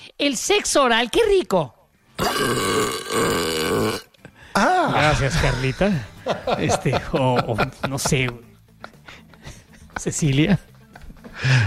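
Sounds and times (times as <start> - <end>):
speech: 0.2 - 4.0, 4.6 - 8.5, 10.0 - 10.7
long loud drawn-out burp: 2.2 - 4.2
laughter: 4.6 - 11.6.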